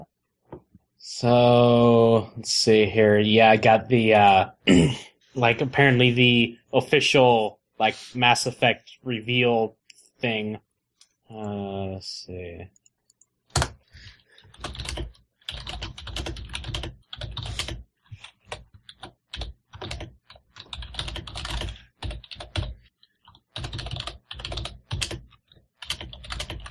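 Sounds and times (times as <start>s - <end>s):
speech: 1.0s - 10.7s, 11.3s - 12.8s
typing on a computer keyboard: 13.1s - 26.6s.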